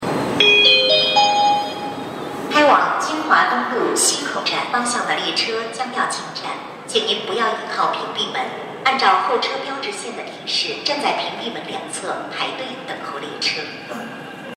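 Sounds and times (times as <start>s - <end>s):
Line 15 subway train entering station toward Tsinghua East Road West Gate: 0.0s - 14.5s.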